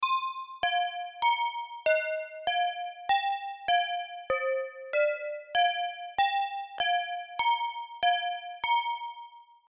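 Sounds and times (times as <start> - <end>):
tubular bells: 0.0 - 9.5.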